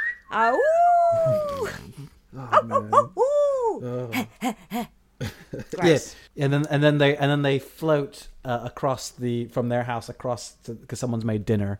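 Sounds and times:
speech: 0.3s - 5.0s, 5.6s - 11.7s
loud exaggerated cartoon wolf howl: 0.4s - 3.9s.

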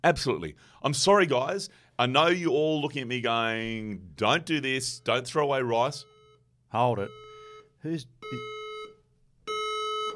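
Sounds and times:
speech: 0.0s - 6.1s, 6.7s - 7.2s, 7.8s - 8.5s
building fire alarm buzzing during a fire drill: 4.4s - 10.1s.

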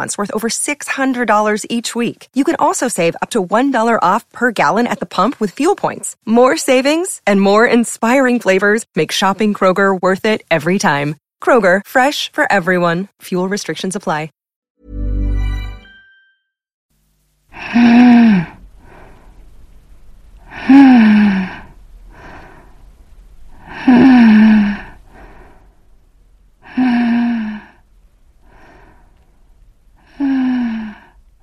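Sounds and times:
speech: 0.0s - 14.4s, 17.6s - 18.6s, 20.6s - 21.6s
shallow labored breathing of a dying woman in a hospital room: 17.5s - 19.6s, 20.4s - 26.0s, 26.6s - 31.4s.

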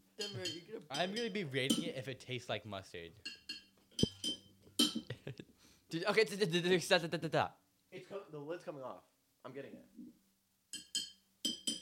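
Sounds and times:
tapping a glass soda bottle: 0.2s - 2.0s, 3.3s - 5.1s, 10.8s - 11.7s
speech: 0.2s - 3.4s, 5.9s - 10.2s.

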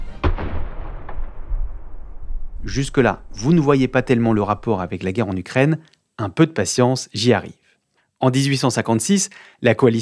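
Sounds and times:
French 12-pounder cannon-howitzer firing: 0.1s - 4.7s
speech: 2.6s - 7.6s, 8.2s - 10.0s.

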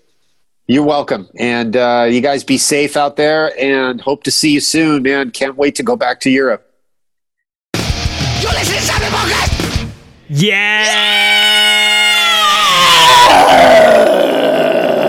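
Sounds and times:
speech: 0.7s - 6.7s, 10.3s - 11.4s
man imitating a heavy metal scream: 8.4s - 9.6s, 10.3s - 15.0s.

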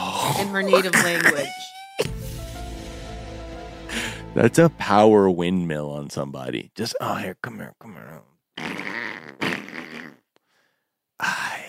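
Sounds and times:
speech: 0.3s - 2.1s, 4.4s - 8.8s
fart: 8.6s - 10.3s.

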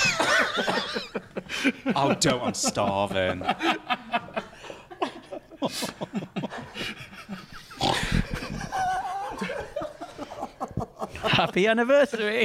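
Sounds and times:
person laughing: 0.0s - 11.6s
speech: 1.6s - 4.2s, 5.7s - 6.3s, 11.4s - 12.4s
person snorting like a pig: 7.7s - 8.4s.

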